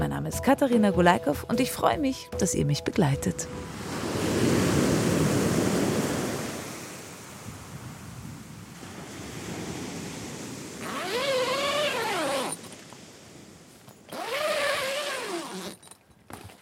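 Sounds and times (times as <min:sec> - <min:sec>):
speech: 0:00.2 - 0:03.8
sea waves washing onto a beach of an East Frisian island: 0:03.5 - 0:15.6.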